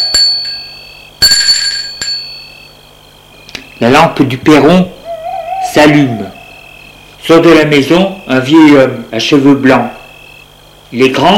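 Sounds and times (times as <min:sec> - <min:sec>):
bell at a front gate ringing: 0:00.0 - 0:02.8
speech: 0:03.8 - 0:05.0, 0:05.7 - 0:06.3, 0:07.2 - 0:10.0, 0:10.9 - 0:11.3.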